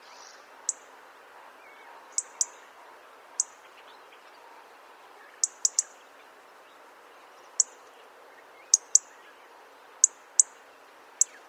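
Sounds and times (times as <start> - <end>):
faint hiss: 0.0 - 11.4
European robin calls, Erithacus rubecula: 0.6 - 0.9, 2.1 - 2.6, 3.4 - 3.8, 5.3 - 6.0, 7.4 - 7.9, 8.6 - 9.3, 10.0 - 10.6, 11.2 - 11.4.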